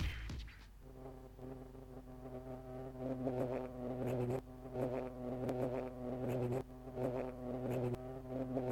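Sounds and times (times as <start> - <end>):
bee buzzing while hovering: 0.8 - 8.6.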